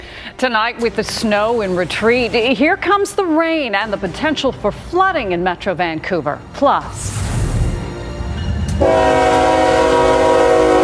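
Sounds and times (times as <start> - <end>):
speech: 0.4 - 7.2
low rumble: 6.8 - 9.0
train horn blaring: 7.8 - 10.8.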